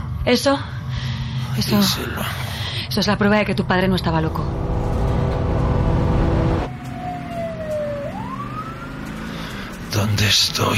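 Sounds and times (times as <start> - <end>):
low rumble of the moving ambulance with road noise: 0.0 - 10.7
speech: 0.2 - 4.7, 10.0 - 10.7
ambulance siren heard from inside the moving ambulance: 4.3 - 9.8.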